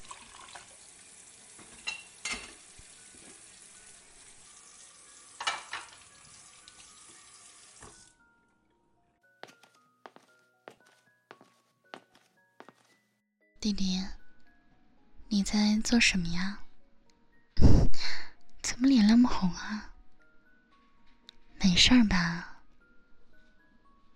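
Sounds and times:
tap water running over dishes being washed: 0.0 - 8.2
dishes clattering: 1.6 - 2.7, 5.4 - 6.1
plates and bowls clinking together: 1.6 - 3.4, 5.4 - 6.2
speech: 13.6 - 14.2, 15.4 - 16.6, 19.3 - 19.9, 21.8 - 22.5.

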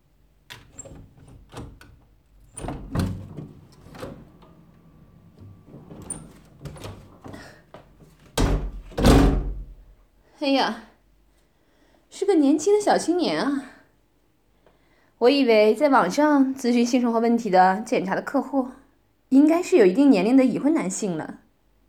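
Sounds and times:
door latch clicks and rattles: 0.5 - 9.9
speech: 10.4 - 10.8, 12.4 - 13.7, 15.2 - 21.4.

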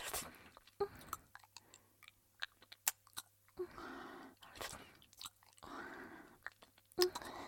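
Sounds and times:
child chewing food while being fed: 0.0 - 3.6, 4.4 - 5.8, 6.4 - 7.3.

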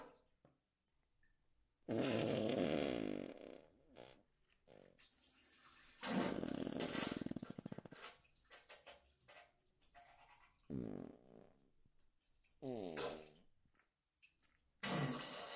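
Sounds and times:
long loud wet sputtering farts: 1.9 - 5.0, 5.9 - 8.2, 10.7 - 11.6, 12.6 - 13.4, 14.8 - 15.5.

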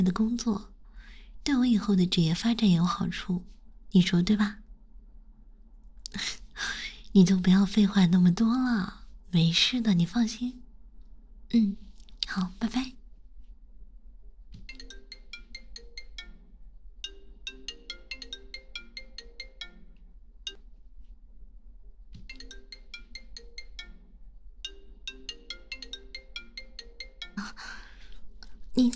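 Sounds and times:
speech: 0.0 - 0.8, 1.4 - 4.6, 6.1 - 10.6, 11.5 - 13.0
low hum: 0.0 - 28.9
mobile phone ringtone with bright repeating electronic melody: 14.7 - 20.6, 22.3 - 27.8.

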